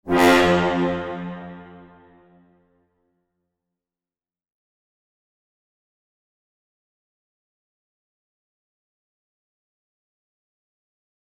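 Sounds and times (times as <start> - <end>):
space orchestral cadence: 0.1 - 2.3.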